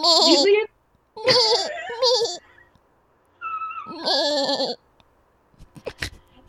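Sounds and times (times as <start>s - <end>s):
human voice imitating a baby lamb bleating: 0.0s - 0.6s, 1.2s - 2.4s, 3.8s - 4.8s
faint clicks and rustles: 5.0s - 6.4s.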